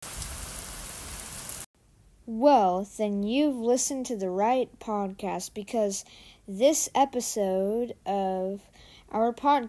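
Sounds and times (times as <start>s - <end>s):
steady dense rainfall: 0.0s - 1.7s
speech: 2.3s - 9.6s.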